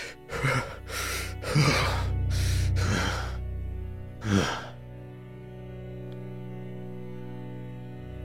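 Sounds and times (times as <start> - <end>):
man breathing heavily: 0.0 - 5.0.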